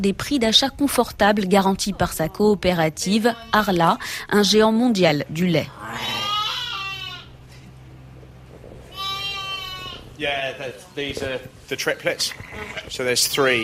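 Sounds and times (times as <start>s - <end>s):
speech: 0.0s - 6.2s, 10.2s - 13.6s
ewes carrying twins bleating on a sheep farm: 3.1s - 4.0s, 5.7s - 7.5s, 8.9s - 10.2s, 12.3s - 13.0s
faint farmyard background: 3.2s - 3.9s, 5.8s - 7.4s, 8.9s - 10.2s.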